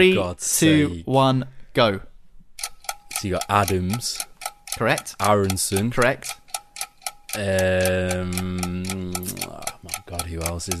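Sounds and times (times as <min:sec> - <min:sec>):
speech: 0:00.0 - 0:02.1, 0:03.2 - 0:06.4, 0:07.3 - 0:10.7
30-second countdown timer for a quiz question ticking: 0:02.6 - 0:10.7.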